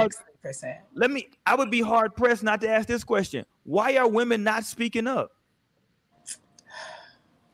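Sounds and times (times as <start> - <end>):
speech: 0.0 - 5.4, 6.2 - 7.0
heavy breathing: 6.6 - 7.3.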